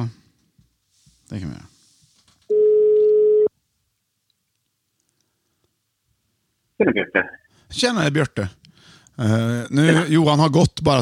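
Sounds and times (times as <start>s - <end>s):
speech: 1.3s - 1.7s, 6.8s - 8.6s, 9.2s - 10.9s
telephone ringing tone as an outgoing call is placed: 2.5s - 3.5s.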